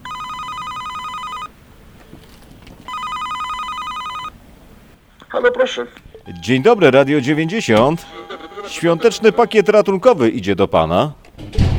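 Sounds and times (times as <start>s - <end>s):
apartment-block intercom ringing after a flat number is dialled: 0.0s - 1.6s, 2.8s - 4.4s
speech: 5.3s - 11.2s.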